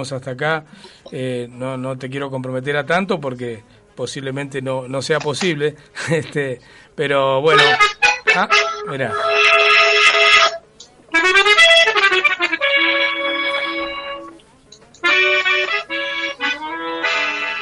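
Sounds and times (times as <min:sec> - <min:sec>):
speech: 0:00.0 - 0:09.6
accordion playing a lively tune: 0:07.5 - 0:14.4, 0:15.0 - 0:17.6.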